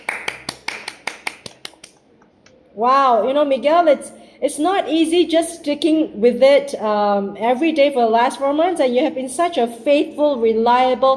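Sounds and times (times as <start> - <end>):
single person clapping: 0.0 - 2.0
speech: 2.8 - 11.1.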